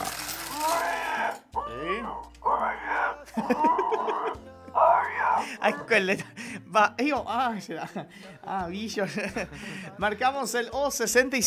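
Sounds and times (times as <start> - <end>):
pig grunting and squealing: 0.5 - 5.9
laughter: 0.9 - 6.4, 7.6 - 8.4, 9.0 - 9.9
speech: 2.1 - 2.4, 5.6 - 11.4.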